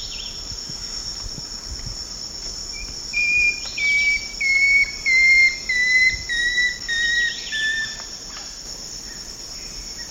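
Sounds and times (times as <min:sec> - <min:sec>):
steady high insect drone: 0:00.0 - 0:10.1
Long-tailed woodcreeper singing whistled notes: 0:03.2 - 0:08.0.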